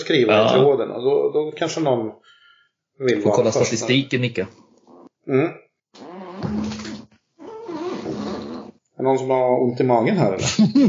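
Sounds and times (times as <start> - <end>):
speech: 0.1 - 2.3, 3.0 - 4.6, 5.2 - 6.0, 9.0 - 10.8
chair creaking and squeaking: 4.5 - 5.2, 6.0 - 8.8.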